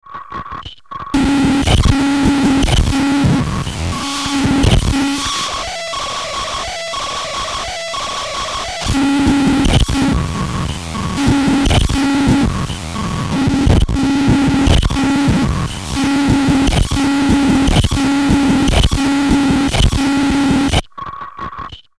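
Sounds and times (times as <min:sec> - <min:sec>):
buzzbox buzzing: 0:01.2 - 0:07.8, 0:08.7 - 0:20.8.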